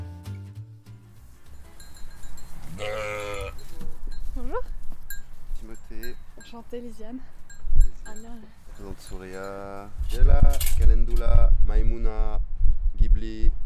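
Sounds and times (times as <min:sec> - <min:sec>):
ewes bleating at a mobile milking station in a field: 0:02.7 - 0:03.6
speech: 0:06.6 - 0:07.4, 0:08.1 - 0:12.4, 0:13.2 - 0:13.6.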